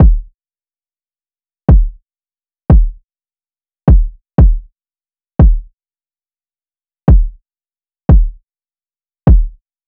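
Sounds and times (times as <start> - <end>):
kick drum loop: 0.0 - 0.3, 1.7 - 2.0, 2.7 - 3.0, 3.9 - 4.7, 5.4 - 5.7, 7.1 - 7.4, 8.1 - 8.4, 9.3 - 9.6.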